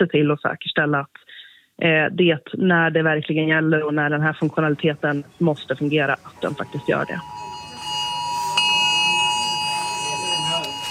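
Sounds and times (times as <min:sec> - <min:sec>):
speech: 0:00.0 - 0:01.2, 0:01.8 - 0:07.4
faint noise: 0:00.0 - 0:10.8
piercing electronic emergency alert alarm tone on a phone: 0:06.4 - 0:10.8.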